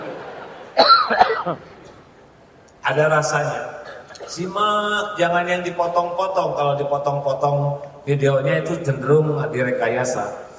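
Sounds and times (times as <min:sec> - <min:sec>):
person coughing: 0:00.8 - 0:02.0
speech: 0:01.4 - 0:01.8, 0:02.9 - 0:10.5.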